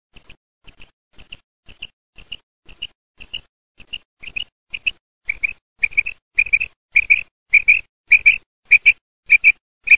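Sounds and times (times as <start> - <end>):
quail calling: 3.2 - 9.9.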